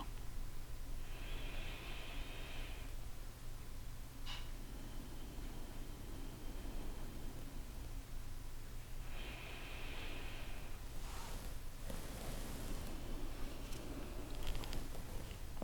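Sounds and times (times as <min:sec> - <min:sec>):
steady hiss: 0:00.0 - 0:15.6
person breathing deeply in a guided meditation: 0:01.0 - 0:03.1, 0:04.6 - 0:07.9, 0:09.0 - 0:15.4.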